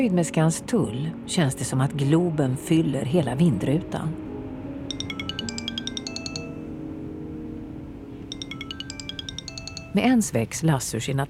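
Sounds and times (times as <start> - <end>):
speech: 0.0 - 4.2, 10.0 - 11.2
mobile phone ringing with bright rapid electronic chiming: 4.9 - 6.8, 8.3 - 10.1.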